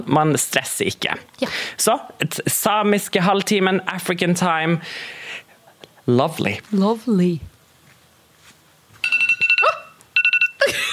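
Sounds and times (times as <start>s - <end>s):
speech: 0.0s - 5.4s, 6.1s - 7.5s
one-minute timer alarm beeping electronically: 9.0s - 10.6s.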